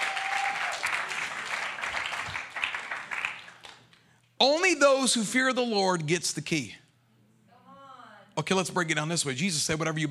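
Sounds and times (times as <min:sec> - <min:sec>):
audience applause: 0:00.0 - 0:03.9
speech: 0:04.8 - 0:06.8, 0:08.4 - 0:10.0.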